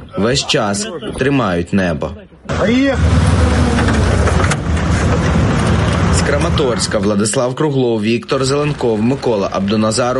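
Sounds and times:
speech: 0.1 - 4.3, 6.2 - 10.1
car engine of evacuation vehicle running and revving: 2.5 - 10.1.

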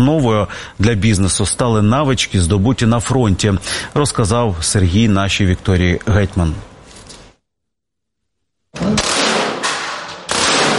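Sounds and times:
speech: 0.0 - 6.7
gunshots at an indoor shooting range in a sports club: 8.8 - 10.7.

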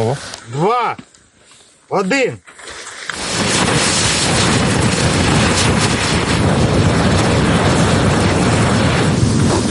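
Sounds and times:
speech: 0.0 - 1.1, 1.9 - 2.7
test incendiary munition burning with a loud steady roaring hiss: 3.1 - 9.6
test incendiary munition for drone dropping igniting with a whoosh: 3.1 - 9.6.

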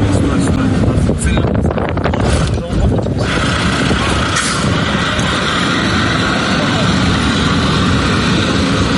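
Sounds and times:
fiber-optic FPV drone buzzing overhead with high-pitched whine: 0.0 - 8.9
wind buffeting the microphone: 0.0 - 8.9.

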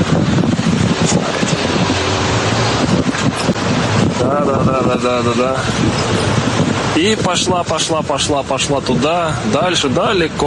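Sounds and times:
wind rush buffeting the microphone while riding a scooter: 0.0 - 10.4
speech: 4.8 - 10.4.

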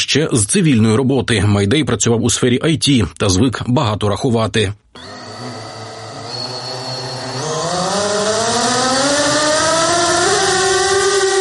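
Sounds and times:
speech: 0.1 - 5.1
interceptor drone motors spinning up for takeoff over the Chernihiv region: 5.0 - 11.3.

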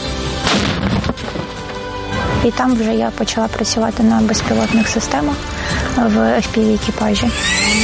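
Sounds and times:
loud booming gunshot: 0.4 - 1.2
speech: 2.4 - 7.8.

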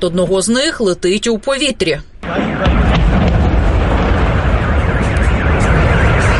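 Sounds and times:
speech: 0.0 - 3.2
oil product tanks exploding at a refinery after a drone strike: 2.2 - 6.3.

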